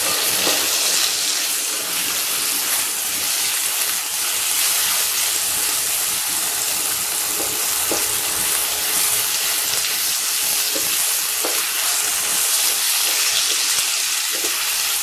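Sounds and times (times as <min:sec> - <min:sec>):
dried tofu sizzling while pan-fried in a hot pan: 0:00.0 - 0:15.0.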